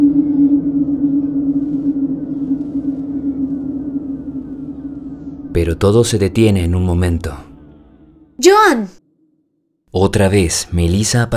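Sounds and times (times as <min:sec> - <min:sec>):
low eerie droning buzz with wavering siren-like hum and dark rumbling undertone: 0:00.0 - 0:08.4
speech: 0:05.6 - 0:07.5, 0:08.4 - 0:09.0, 0:09.9 - 0:11.3.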